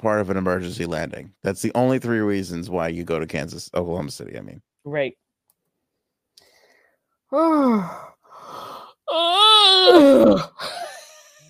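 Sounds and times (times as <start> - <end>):
speech: 0.0 - 5.2, 7.3 - 10.8
person yawning loudly: 7.3 - 10.8.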